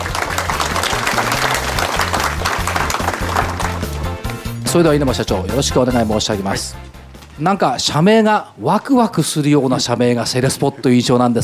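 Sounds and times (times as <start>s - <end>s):
audience applause welcoming speaker: 0.0s - 4.3s
walk-on music with rhythmic stepping bass line: 0.0s - 7.6s
speech: 4.7s - 11.4s.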